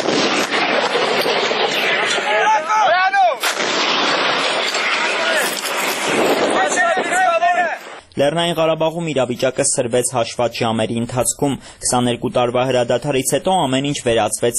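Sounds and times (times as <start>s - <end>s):
artillery fire with rocket launchers and tanks in a mountain war zone: 0.0s - 8.0s
speech: 8.2s - 14.5s.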